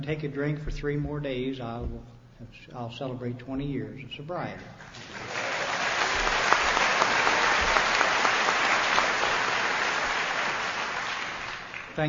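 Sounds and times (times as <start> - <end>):
speech: 0.0 - 5.4
audience applause: 4.9 - 12.0.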